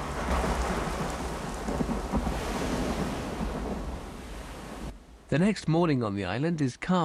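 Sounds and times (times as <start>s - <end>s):
low rumbling thunder: 0.0s - 5.0s
heavy rain pouring on a beach and a plane: 0.0s - 5.3s
speech: 5.3s - 7.0s.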